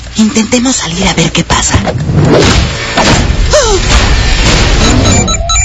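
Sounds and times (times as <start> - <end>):
speech: 0.3 - 5.6
door crashing open with booming thuds and splintering smash: 2.4 - 5.3
rumbling debris: 2.4 - 5.3.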